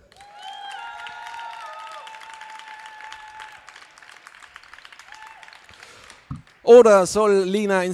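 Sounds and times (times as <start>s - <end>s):
whoops and cheers: 0.0s - 6.2s
audience applause for poetry slam contestant: 0.0s - 7.7s
speech: 6.7s - 7.9s.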